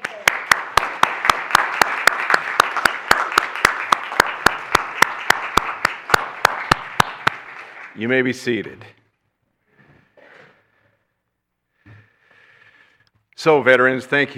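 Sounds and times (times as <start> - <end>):
large crowd applauding: 0.0 - 8.4
sharp evenly spaced claps in a quick regular rhythm: 0.0 - 8.6
speech: 8.0 - 9.0, 13.4 - 14.3.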